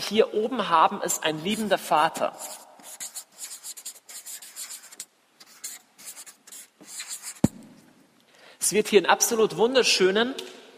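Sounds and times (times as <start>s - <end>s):
speech: 0.1s - 3.1s, 8.7s - 10.5s
pen drawing a diagram by hand: 1.5s - 7.5s.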